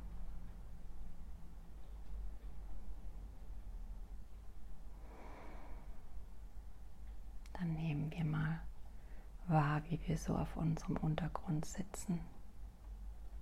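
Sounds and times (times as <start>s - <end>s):
quiet low hum: 0.0s - 13.4s
soft airy conscious breath through the nose: 4.9s - 6.3s
speech: 7.6s - 8.7s, 9.5s - 12.4s.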